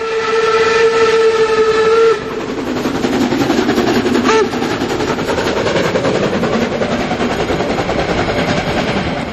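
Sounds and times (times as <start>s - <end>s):
steam locomotive whistle blast: 0.0s - 2.5s, 4.2s - 4.7s
steam locomotive chugging heavily uphill: 0.0s - 9.3s.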